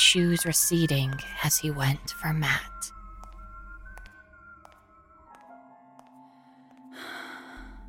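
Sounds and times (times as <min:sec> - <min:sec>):
speech: 0:00.1 - 0:03.0
heavy breathing in uneven catching gasps: 0:06.2 - 0:07.8.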